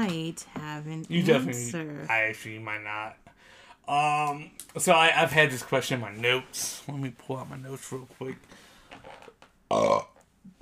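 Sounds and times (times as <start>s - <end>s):
speech: 0.0s - 10.1s
loud burp: 9.7s - 10.2s.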